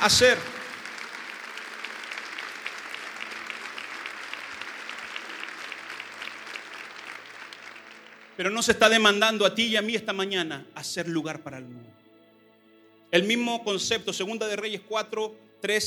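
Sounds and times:
speech: 0:00.0 - 0:00.6, 0:08.4 - 0:12.0, 0:13.1 - 0:15.8
large audience applauding loudly: 0:00.0 - 0:08.7.

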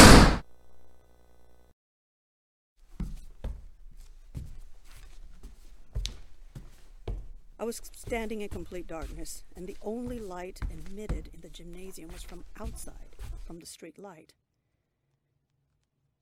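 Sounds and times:
heavy gym door slamming shut: 0:00.0 - 0:00.4
footsteps: 0:02.8 - 0:13.6
speech: 0:07.6 - 0:14.4.

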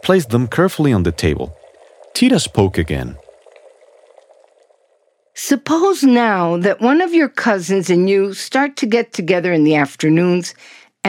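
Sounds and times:
water boiling over a fire at a rolling simmer: 0:00.0 - 0:07.0
speech: 0:00.1 - 0:01.6, 0:02.2 - 0:03.2, 0:05.4 - 0:11.0.

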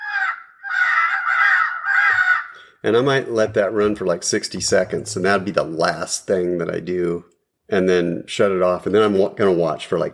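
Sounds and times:
crows cawing harshly: 0:00.0 - 0:02.8
speech: 0:02.8 - 0:10.1.

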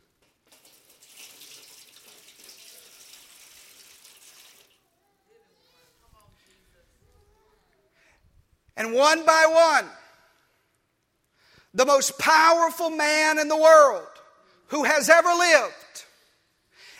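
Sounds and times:
water pouring into a basin: 0:00.5 - 0:04.9
speech: 0:08.8 - 0:10.0, 0:11.8 - 0:15.8.

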